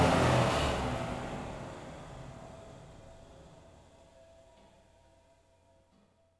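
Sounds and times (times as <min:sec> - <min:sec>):
mine fan running: 0:00.0 - 0:04.2.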